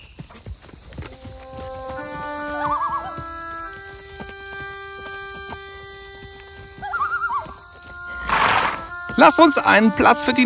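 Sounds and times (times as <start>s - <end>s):
hooves of ridden horses clip-clopping: 0.0s - 10.4s
soft sustained music: 0.9s - 10.4s
horse whinnying: 2.5s - 3.2s, 6.8s - 7.5s, 8.1s - 8.9s
speech: 9.2s - 10.4s.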